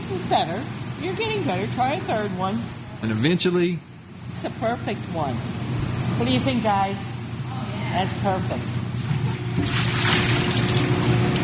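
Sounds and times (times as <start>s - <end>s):
speech: 0.1s - 7.1s, 7.9s - 8.8s
water splashing in a kitchen where pierogies are made: 9.0s - 11.4s.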